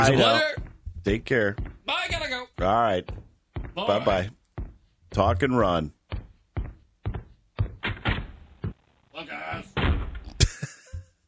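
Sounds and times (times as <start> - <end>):
speech: 0.0 - 4.4, 5.1 - 6.2
knocks and bumps: 0.0 - 11.1
door slamming: 7.6 - 8.4, 9.5 - 10.4.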